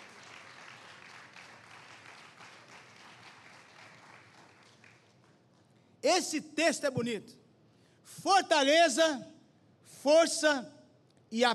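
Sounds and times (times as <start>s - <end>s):
large crowd applauding: 0.0s - 5.6s
speech: 6.0s - 7.4s, 8.2s - 9.3s, 10.0s - 11.5s.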